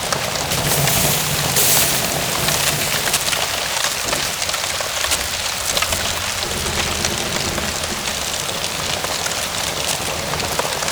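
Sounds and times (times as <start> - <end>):
fire ambience: 0.1 - 10.7.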